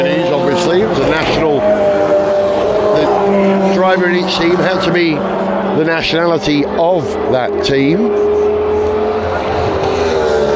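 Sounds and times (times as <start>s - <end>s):
speech: 0.0s - 1.9s, 3.9s - 8.5s
Cadillac race car passing by during a sports-car endurance race: 0.0s - 10.5s.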